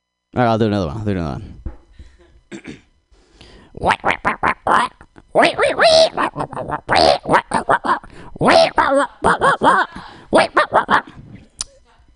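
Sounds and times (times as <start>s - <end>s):
speech: 0.4s - 1.6s, 2.5s - 2.8s, 3.8s - 4.1s, 4.7s - 11.0s
person imitating a wolf with yips, barks and howl-like cries: 3.8s - 11.6s.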